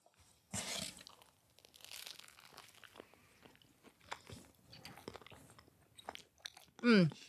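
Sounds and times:
crunchy bite into a slice of New York-style pizza: 0:00.6 - 0:05.4
chewing and crunching a slice of New York-style pizza: 0:00.6 - 0:07.2.

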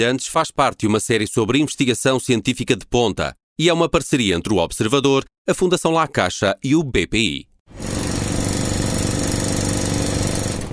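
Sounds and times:
speech: 0:00.0 - 0:07.5
lab culture-medium aspirator motor buzzing in flow hood: 0:07.7 - 0:10.7.

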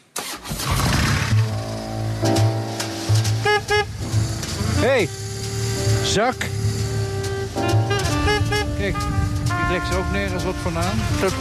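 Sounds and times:
1200cc BMW motorcycle rumbling and revving while riding through traffic: 0:00.2 - 0:11.3
motorcycle horn toots: 0:00.6 - 0:11.3
speech: 0:04.8 - 0:05.2, 0:06.1 - 0:06.7, 0:08.8 - 0:11.3.

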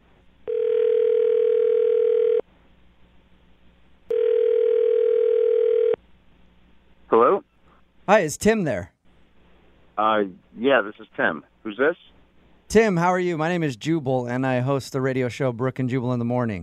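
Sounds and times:
telephone dial tone: 0:00.5 - 0:02.4, 0:04.1 - 0:06.0
speech: 0:08.1 - 0:08.9, 0:10.0 - 0:12.1, 0:12.7 - 0:16.6.

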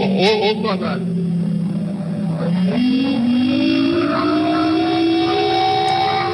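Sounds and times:
dull rumble: 0:00.0 - 0:06.3
speech: 0:00.2 - 0:01.3, 0:02.4 - 0:04.4
air raid siren winding up in the capital of Kuwait warning of missile attack: 0:02.6 - 0:06.3.

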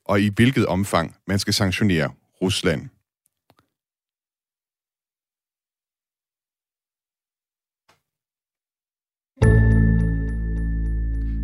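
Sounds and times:
speech: 0:00.1 - 0:03.0
podcast separator musical jingle chord: 0:09.4 - 0:11.4.

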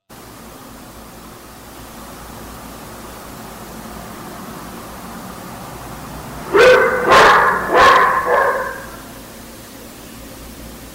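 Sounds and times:
dog barking: 0:06.4 - 0:09.2.

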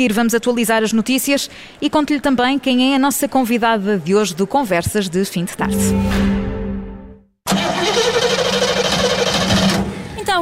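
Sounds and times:
speech: 0:00.0 - 0:06.6
truck engine whining down and cutting out: 0:07.5 - 0:10.0.

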